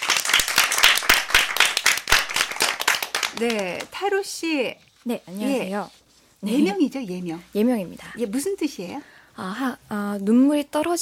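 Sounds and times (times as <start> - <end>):
audience applauding welcoming a guest: 0.0 - 3.9
speech: 3.4 - 11.0.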